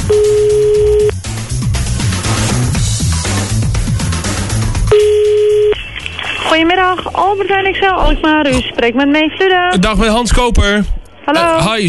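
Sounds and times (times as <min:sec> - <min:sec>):
telephone ringing tone while calling a supermarket: 0:00.0 - 0:01.1, 0:04.9 - 0:05.8
rhythmic music: 0:00.0 - 0:08.4
speech: 0:07.2 - 0:11.8.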